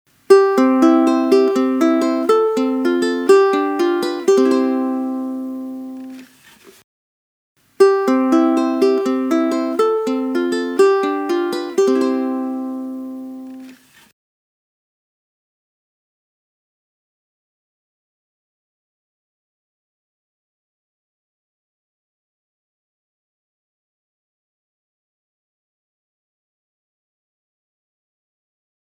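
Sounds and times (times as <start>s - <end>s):
ukulele tremolo: 0.3s - 6.2s, 7.8s - 13.7s.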